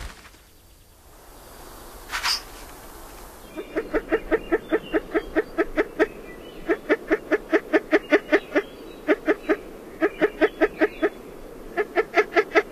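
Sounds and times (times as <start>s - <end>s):
Spruce Grouse calling in North America: 3.5s - 12.7s.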